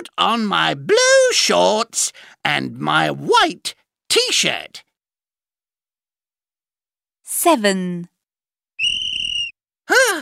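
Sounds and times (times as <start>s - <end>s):
speech: 0.0s - 4.9s, 7.3s - 8.1s, 9.9s - 10.1s
sports teacher blowing a whistle: 8.8s - 9.6s.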